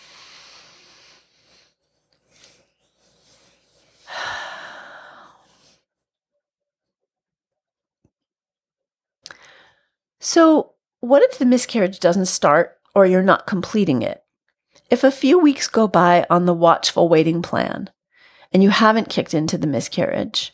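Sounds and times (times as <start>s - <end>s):
slow deep breaths: 0.0s - 5.8s, 9.3s - 10.0s
speech: 10.2s - 14.2s, 14.8s - 20.5s.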